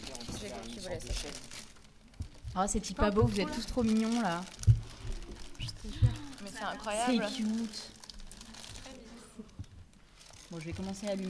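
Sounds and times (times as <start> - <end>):
plastic packaging crinkling as macarons are taken out: 0.0 - 11.2
speech: 0.8 - 1.6, 2.6 - 4.6, 6.6 - 8.0, 10.6 - 11.2
faint voice murmuring: 5.2 - 9.6.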